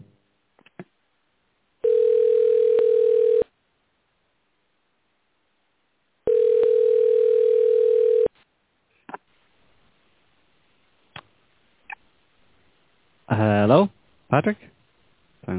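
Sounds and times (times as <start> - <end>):
telephone dial tone on a faulty landline: 1.8 - 3.4, 6.3 - 8.3
speech: 13.7 - 14.7.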